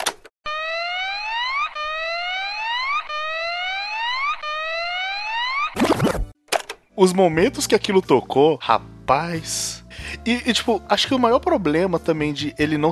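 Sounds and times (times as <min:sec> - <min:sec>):
alarm-like electronic soundtrack jingle of rising siren sweeps: 0:00.5 - 0:06.3
speech: 0:07.0 - 0:12.8.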